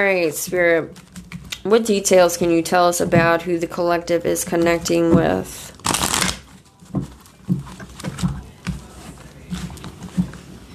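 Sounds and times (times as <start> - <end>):
speech: 0.0 - 5.8
shuffling a deck of tarot cards during a tarot reading: 5.7 - 6.7.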